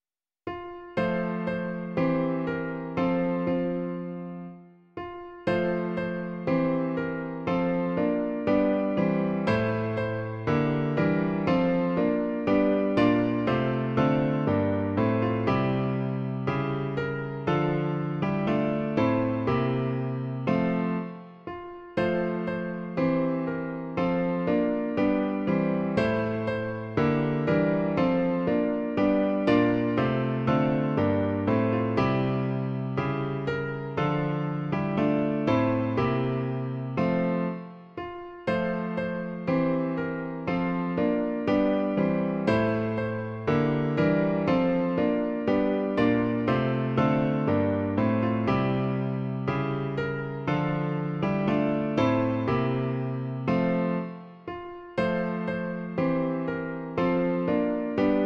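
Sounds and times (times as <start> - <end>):
piano version of a song: 0.0 - 58.2.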